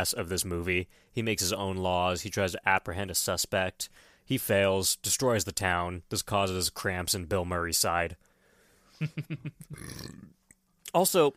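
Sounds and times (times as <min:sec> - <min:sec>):
speech: 0:00.0 - 0:08.3, 0:09.0 - 0:11.3
croaky burp: 0:09.6 - 0:10.4.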